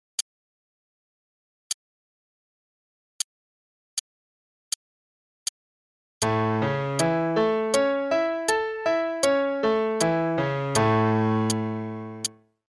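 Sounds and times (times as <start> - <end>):
arpeggios in A major: 6.2 - 12.4.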